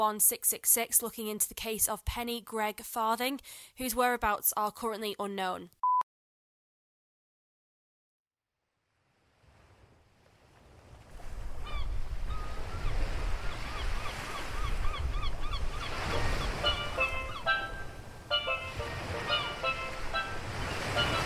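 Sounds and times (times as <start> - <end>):
speech: 0.0 - 5.8
surf rumbling along a beach: 9.2 - 21.2
gulls calling: 11.6 - 21.2.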